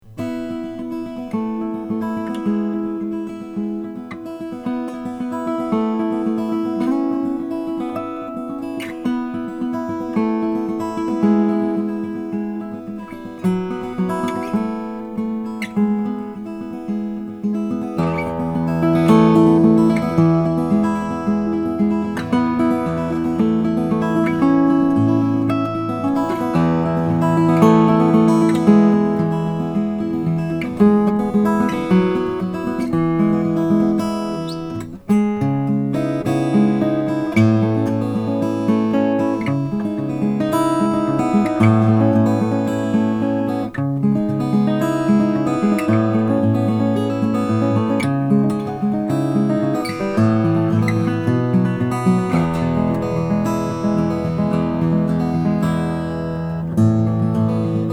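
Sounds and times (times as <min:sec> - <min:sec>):
Claxton EMC Brazilian rosewood guitar: 0:00.0 - 0:57.9.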